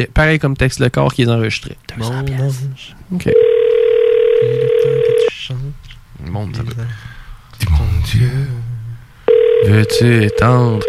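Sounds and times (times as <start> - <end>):
speech: 0.0 - 3.6, 5.5 - 8.6, 9.6 - 10.8
telephone line ringing with one long steady tone: 3.3 - 5.3, 9.3 - 10.8.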